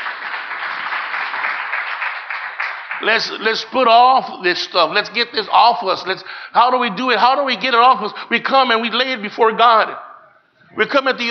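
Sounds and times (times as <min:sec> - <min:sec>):
crowd in a large room applauding: 0:00.0 - 0:03.5
speech: 0:03.0 - 0:10.1, 0:10.8 - 0:11.2.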